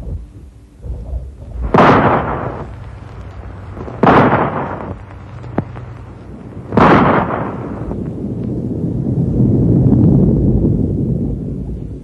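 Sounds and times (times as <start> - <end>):
low rumble of avalanche set off by rifle shots in the mountains: 0.0 - 12.0
rifle shots fired to knock loose snow in the mountains: 1.6 - 8.0.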